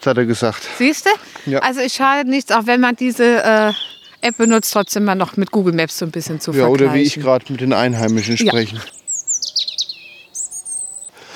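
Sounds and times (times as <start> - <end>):
speech: 0.0 - 9.0
bird chirping: 3.2 - 11.3.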